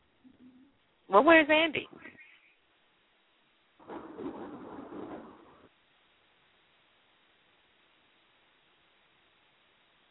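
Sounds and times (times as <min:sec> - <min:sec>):
quiet hiss on a muffled narrow line: 0:00.0 - 0:10.0
speech: 0:01.1 - 0:02.0
rain in a thunderstorm: 0:02.6 - 0:10.0
thunder in a thunderstorm: 0:03.8 - 0:05.7.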